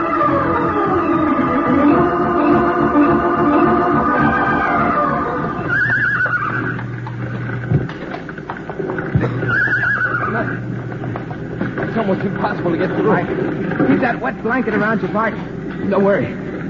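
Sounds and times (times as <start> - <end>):
dense constant noisy background: 0.0 - 16.6
frightened horses neighing in a burning barn: 2.4 - 11.9
horse hooves clattering and restless stamping: 4.3 - 14.2
speech: 13.1 - 16.4.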